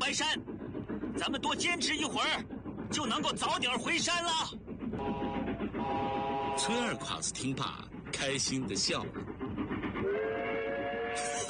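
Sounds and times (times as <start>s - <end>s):
steam train hissing: 0.0s - 11.4s
speech: 0.1s - 4.6s, 5.9s - 9.3s
steam train whistle: 5.0s - 7.0s, 10.0s - 11.4s.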